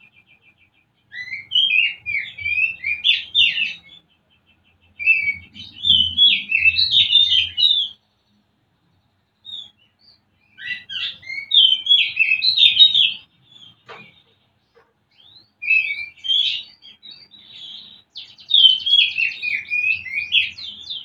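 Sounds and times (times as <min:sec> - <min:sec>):
Oriental magpie-robin song: 0:01.1 - 0:04.0, 0:05.0 - 0:08.0, 0:09.4 - 0:13.8, 0:15.2 - 0:21.0.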